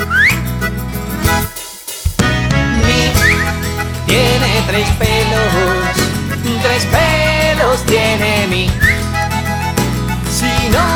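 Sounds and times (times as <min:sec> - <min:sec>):
whistle replacing a word in a children's song: 0:00.0 - 0:00.5, 0:03.2 - 0:03.8, 0:08.8 - 0:09.1
children's song accompaniment: 0:00.0 - 0:10.9.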